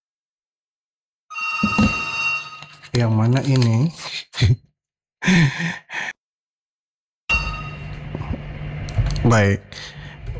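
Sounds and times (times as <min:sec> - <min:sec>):
telephone ringing for an incoming call: 0:01.3 - 0:02.9
speech: 0:03.0 - 0:04.6, 0:05.2 - 0:06.1, 0:09.2 - 0:10.0.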